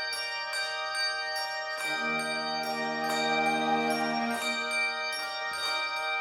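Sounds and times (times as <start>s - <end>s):
church bells pealing: 0.1s - 6.1s
deeper heavier bell ringing: 1.8s - 5.5s.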